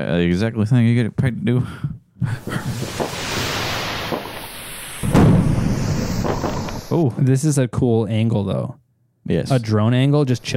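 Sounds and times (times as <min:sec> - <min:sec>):
speech: 0:00.0 - 0:03.0, 0:07.0 - 0:10.5
aerial fireworks booming: 0:02.4 - 0:07.0.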